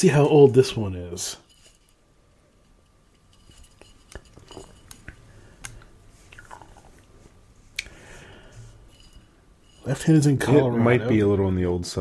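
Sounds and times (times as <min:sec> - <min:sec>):
speech: 0:00.0 - 0:01.4, 0:09.8 - 0:11.9
glass clinks: 0:03.2 - 0:05.4, 0:08.7 - 0:10.7
sipping a ginger drink from a glass: 0:04.1 - 0:07.1
mouth and swallowing noises: 0:06.2 - 0:07.0.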